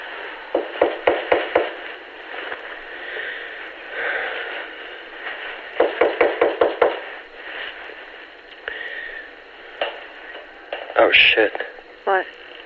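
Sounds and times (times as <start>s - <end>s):
firm knocking on a door heard over a phone line: 0.5s - 1.8s, 5.8s - 7.0s
speech: 11.0s - 12.4s.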